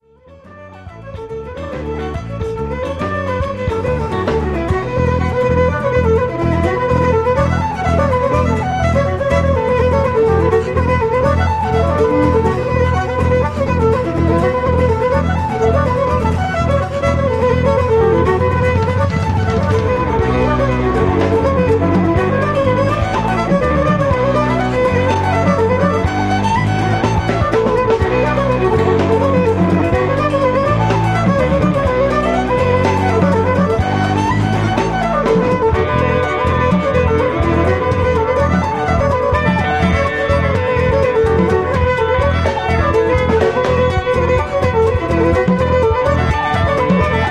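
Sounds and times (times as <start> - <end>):
Celtic rock reels: 0.0 - 47.2.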